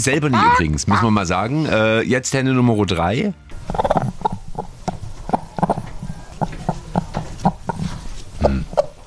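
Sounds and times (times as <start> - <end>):
speech: 0.0 - 4.1
hen clucking: 0.3 - 1.2, 3.5 - 9.0.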